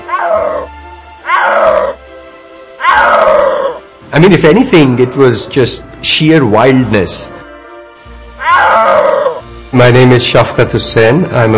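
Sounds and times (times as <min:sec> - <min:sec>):
snow leopard roaring calls: 0:00.0 - 0:02.0, 0:02.8 - 0:03.9, 0:08.4 - 0:09.4
speech: 0:04.2 - 0:07.4, 0:09.7 - 0:11.5.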